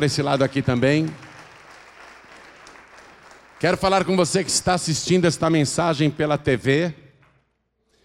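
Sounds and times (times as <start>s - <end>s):
speech: 0.0s - 1.3s, 3.6s - 7.0s
audience applauding: 0.0s - 5.0s.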